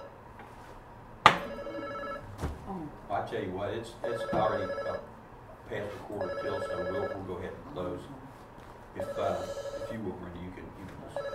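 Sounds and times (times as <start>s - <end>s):
phone ringing with a bright bell-like tone: 1.4s - 2.3s, 4.0s - 5.1s, 6.2s - 7.3s, 9.0s - 10.1s, 11.1s - 11.3s
speech: 3.2s - 5.1s, 5.7s - 8.2s, 9.0s - 11.3s.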